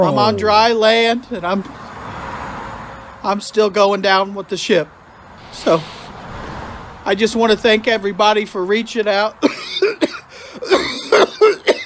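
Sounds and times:
speech: 0:00.0 - 0:01.8, 0:03.2 - 0:05.0, 0:05.6 - 0:06.0, 0:07.1 - 0:11.6
harsh raspy chronic smoker's cough: 0:09.4 - 0:11.8.

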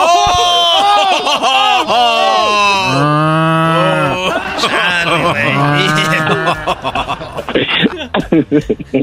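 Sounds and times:
bursts of laughter: 0:00.4 - 0:02.4, 0:04.1 - 0:09.0
person imitating cow mooing: 0:02.5 - 0:04.2, 0:05.2 - 0:06.7
speech: 0:06.5 - 0:09.0.

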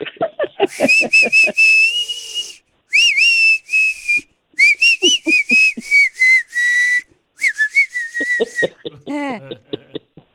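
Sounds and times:
person laughing: 0:00.7 - 0:02.6, 0:04.9 - 0:06.7, 0:08.0 - 0:10.0
person whistling a melodic tune: 0:00.7 - 0:08.7.

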